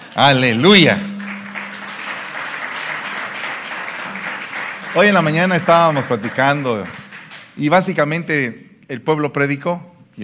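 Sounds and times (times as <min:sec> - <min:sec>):
speech: 0:00.2 - 0:01.1, 0:05.0 - 0:07.0, 0:07.6 - 0:10.2
audience applause at a church service: 0:01.2 - 0:07.5.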